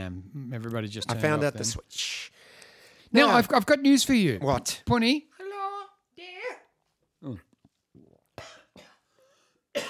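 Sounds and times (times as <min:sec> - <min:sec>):
speech: 0:00.1 - 0:02.4, 0:03.1 - 0:05.3, 0:07.2 - 0:07.5
harsh coughing: 0:08.4 - 0:09.8.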